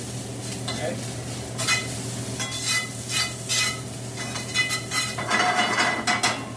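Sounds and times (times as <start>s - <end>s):
shallots frying and caramelizing in a pan: 0.0s - 6.5s
scraping and stirring in a pan: 1.6s - 6.2s.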